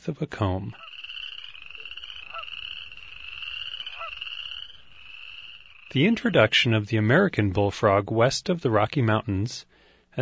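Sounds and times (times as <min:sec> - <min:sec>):
speech: 0:00.1 - 0:00.9, 0:05.9 - 0:10.2
western or boreal chorus frogs trilling in a dense chorus: 0:00.7 - 0:06.5.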